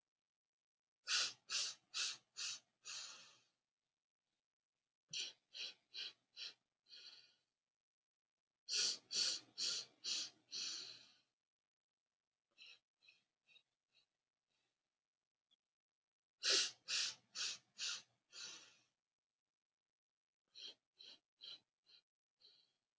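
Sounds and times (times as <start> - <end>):
rhythmic forceful breaths during a breathing exercise: 1.1 - 3.5, 5.1 - 7.5, 8.7 - 11.3, 16.4 - 18.9, 20.5 - 22.8
soft quiet breaths: 1.1 - 3.6, 5.1 - 7.5, 8.7 - 11.3, 12.6 - 14.6, 16.4 - 19.0, 20.5 - 22.8.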